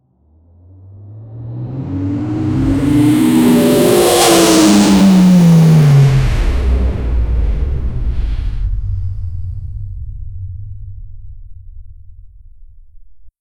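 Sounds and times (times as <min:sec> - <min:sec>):
very powerful engine accelerating: 0:00.8 - 0:09.2.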